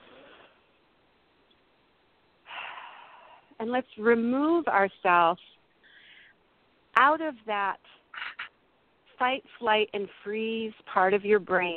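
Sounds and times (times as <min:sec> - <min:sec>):
person taking a deep breath during a guided relaxation: 0:02.5 - 0:03.6, 0:05.8 - 0:06.4
speech: 0:03.6 - 0:05.6, 0:07.0 - 0:08.0, 0:09.2 - 0:11.7.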